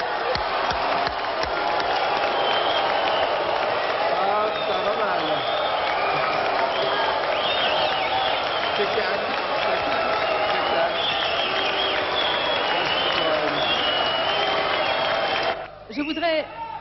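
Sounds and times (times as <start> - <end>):
large audience clapping at a film festival award ceremony: 0.0 - 15.8
audience whistles at a film festival award ceremony: 2.2 - 3.6, 4.5 - 9.1, 10.2 - 16.2.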